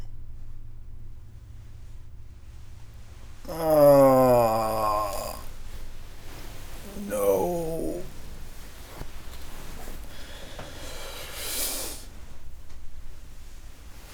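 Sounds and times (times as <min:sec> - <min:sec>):
person making noises: 0:03.4 - 0:12.0.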